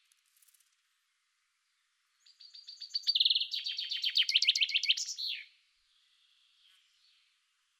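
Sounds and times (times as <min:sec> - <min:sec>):
common chaffinch Fringilla coelebs singing: 0:01.7 - 0:07.4.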